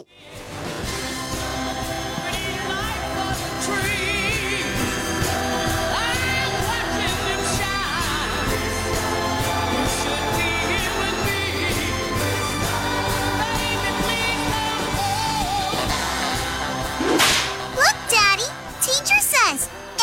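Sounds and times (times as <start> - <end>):
busy musical bed: 0.0 - 20.0
whip crack: 17.0 - 17.6.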